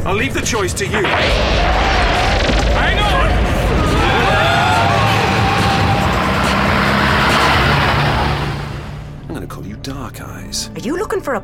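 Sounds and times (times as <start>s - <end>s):
speech: 0.0s - 2.1s, 9.8s - 11.4s
taxi cab engine revving hard as the car speeds along: 1.0s - 9.3s
road rumble of a speeding taxi cab: 1.0s - 9.4s.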